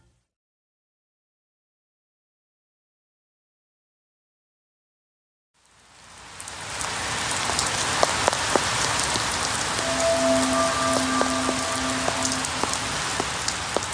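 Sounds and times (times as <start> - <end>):
steady rain pattering on fallen leaves: 5.6 - 13.8
faint sustained tone: 9.6 - 13.4.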